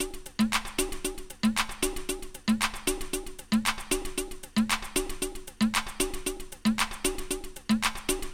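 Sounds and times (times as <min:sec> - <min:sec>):
poppy electro loop: 0:00.0 - 0:08.3.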